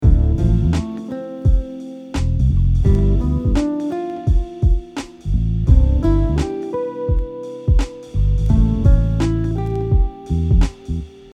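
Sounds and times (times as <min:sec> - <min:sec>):
guitar playing ascending chord tone arpeggios: 0:00.0 - 0:02.2, 0:02.8 - 0:05.0, 0:05.7 - 0:11.2.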